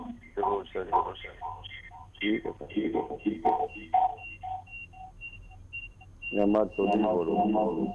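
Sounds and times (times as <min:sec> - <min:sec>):
person speaking on a phone line: 0:00.0 - 0:04.1, 0:06.4 - 0:07.9
radio playing in the background of a phone line: 0:00.0 - 0:04.6, 0:06.3 - 0:07.9.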